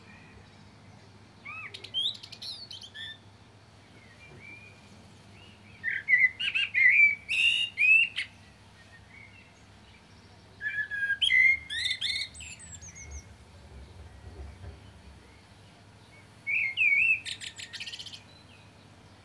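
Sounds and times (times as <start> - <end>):
Turdus merula common blackbird singing: 1.4 - 19.2.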